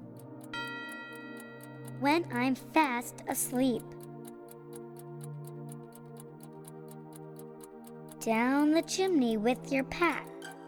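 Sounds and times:
clock chime: 0.0 - 4.5, 8.2 - 10.6
clock ticking: 0.0 - 10.6
low musical hum: 0.0 - 10.6
speech: 2.0 - 4.0, 8.2 - 10.3.

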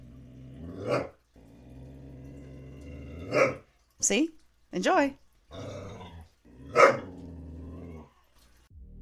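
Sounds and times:
dog growling low: 0.0 - 3.7, 5.5 - 8.3
speech: 4.0 - 5.6.

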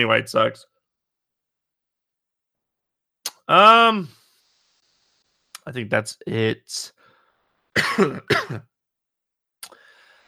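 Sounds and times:
speech: 0.0 - 0.7, 3.5 - 4.2, 5.6 - 7.0, 7.8 - 8.7
harsh raspy coughs: 7.8 - 8.6.

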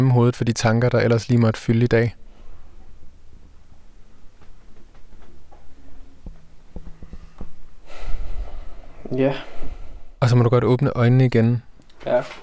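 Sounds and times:
speech: 0.0 - 2.2, 9.1 - 9.5, 10.2 - 12.4
slow deep breathing: 2.2 - 4.4, 5.7 - 10.2.

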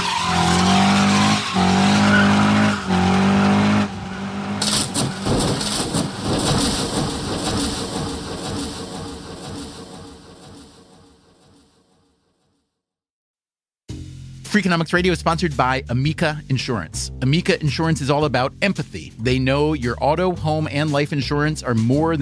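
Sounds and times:
race car engines roaring: 0.0 - 9.9
race car tires screeching: 0.0 - 10.2
about 20 race cars colliding at around 180: 0.0 - 11.1
debris scattering: 4.5 - 10.6
speech: 14.6 - 22.2.

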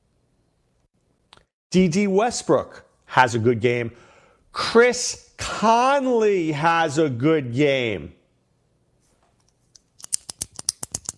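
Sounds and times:
speech: 1.7 - 8.2
pen clicking: 9.8 - 11.1.

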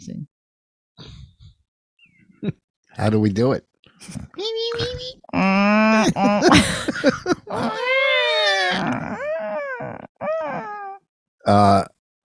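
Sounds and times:
speech: 2.4 - 7.9, 11.5 - 11.9
voice imitating whale calls: 5.3 - 6.5, 7.5 - 11.8
laughter: 6.0 - 8.9.

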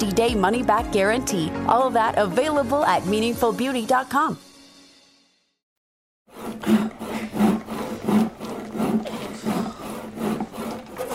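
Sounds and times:
speech: 0.0 - 4.5
hand saw cutting wood: 6.3 - 11.1.

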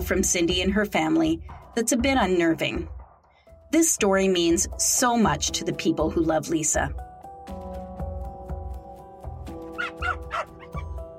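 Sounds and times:
speech: 0.1 - 3.0, 3.7 - 7.1
small dog barking and yipping: 9.8 - 11.0.

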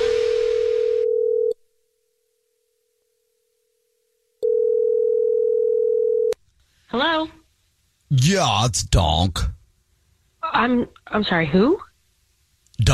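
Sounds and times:
telephone dial tone before a prank phone call: 0.7 - 1.6, 4.4 - 6.3
speech: 6.9 - 7.4, 8.1 - 9.6, 10.5 - 11.8.

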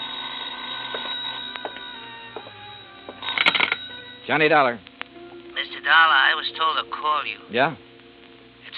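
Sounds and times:
telephone bell ringing: 0.0 - 4.3
speech: 4.3 - 4.9, 5.9 - 7.9.

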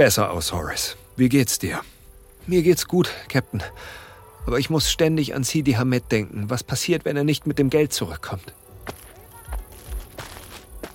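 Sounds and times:
speech: 0.0 - 9.0
footsteps outside a gate: 8.8 - 10.9.

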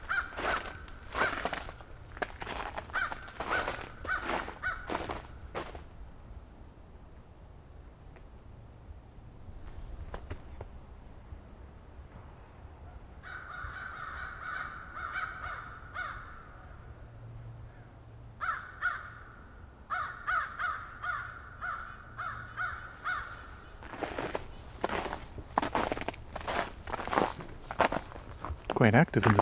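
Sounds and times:
American crow cawing: 0.0 - 5.7, 13.2 - 16.8, 18.4 - 19.3, 19.9 - 28.1
crunching footsteps on leaves: 0.0 - 5.9, 22.9 - 29.4
outdoor ambience: 0.0 - 29.4
speech: 28.8 - 29.4.

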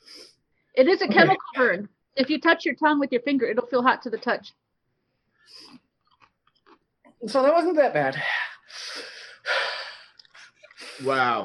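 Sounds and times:
brief snuffly sniffs: 0.0 - 0.4, 8.6 - 11.2
speech: 0.8 - 4.6, 7.2 - 9.1, 11.0 - 11.4
forceful nose blowing from a runny nose: 5.4 - 5.8, 8.4 - 11.2.

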